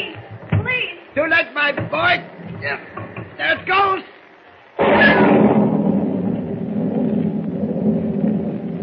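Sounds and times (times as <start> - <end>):
steady rain: 0.0 - 8.8
speech: 1.2 - 4.2
loud crack of thunder rolling into a heavy rumble: 4.8 - 8.8.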